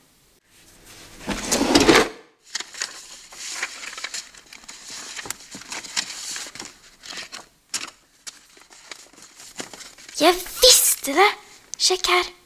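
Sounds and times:
rustling crinkling papers: 0:00.8 - 0:12.3
dresser drawer sliding open with a broad scrape: 0:00.9 - 0:02.2
speech: 0:10.2 - 0:10.5, 0:11.1 - 0:12.4.

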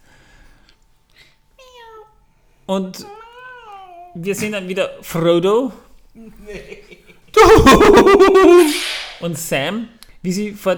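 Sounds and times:
speech: 0:02.7 - 0:03.2, 0:04.2 - 0:10.7
laughter: 0:06.5 - 0:09.0
drawn-out meow-like eagle cry: 0:07.4 - 0:09.0.

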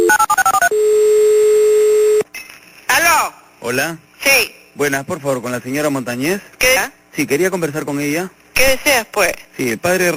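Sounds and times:
touch-tone dialling of a telephone number: 0:00.0 - 0:00.9
long steady telephone tone: 0:00.0 - 0:02.2
speech: 0:03.7 - 0:10.1.

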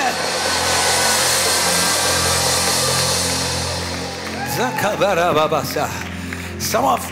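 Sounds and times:
audience roaring during a sermon: 0:00.0 - 0:05.5
individual voices screaming and shouting: 0:00.0 - 0:06.0
speech: 0:04.6 - 0:06.0, 0:06.6 - 0:07.1.

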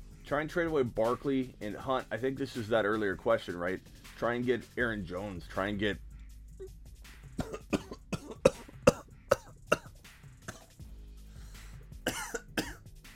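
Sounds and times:
speech: 0:00.3 - 0:06.8
throat clearing: 0:07.4 - 0:09.9, 0:12.1 - 0:12.8
person coughing and choking after breathing in wrong: 0:07.4 - 0:10.7, 0:12.0 - 0:12.8.

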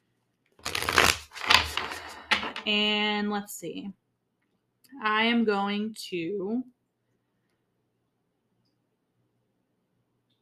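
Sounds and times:
playing cards being shuffled: 0:00.6 - 0:02.6
speech: 0:02.6 - 0:04.0, 0:04.9 - 0:06.8.

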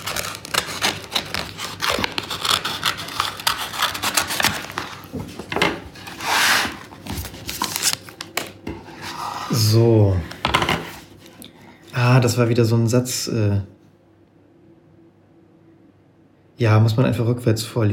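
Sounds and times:
something being cut open: 0:00.0 - 0:05.2
crinkly rustling and scraping with a tearing texture: 0:00.0 - 0:11.4
speech: 0:09.7 - 0:10.0, 0:12.2 - 0:13.8, 0:16.6 - 0:17.9.

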